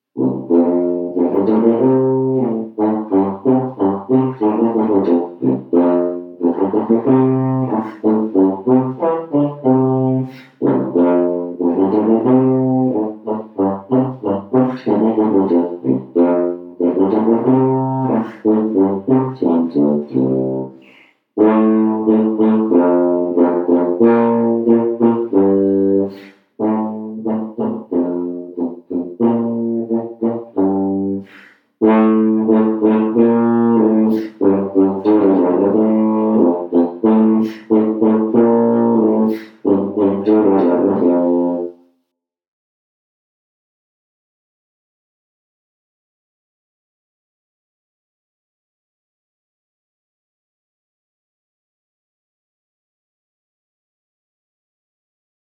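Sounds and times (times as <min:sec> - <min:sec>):
tuba: 0:00.0 - 0:42.1.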